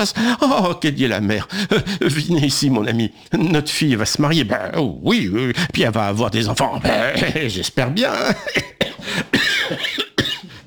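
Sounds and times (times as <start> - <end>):
speech: 0.0 - 9.3
person coughing in a cold cellar: 8.3 - 10.6.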